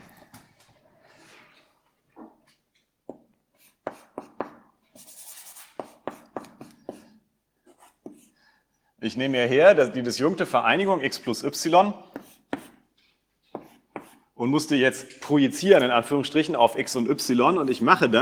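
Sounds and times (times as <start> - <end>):
handwriting during a mathematics lecture: 3.1 - 8.4, 12.0 - 14.3
speech: 9.0 - 12.1, 14.4 - 18.1.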